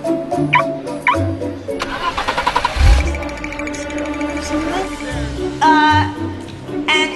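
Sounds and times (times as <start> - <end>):
speech: 0.1 - 0.7
car engine starting with remote activation feature: 1.7 - 6.9
electronic chirps: 2.8 - 5.8.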